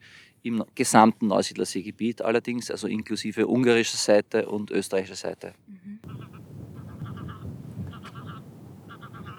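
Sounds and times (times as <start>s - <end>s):
speech: 0.4s - 6.2s
greylag geese honking while flying past: 6.0s - 9.3s
steady low rumble of wind: 6.0s - 9.3s.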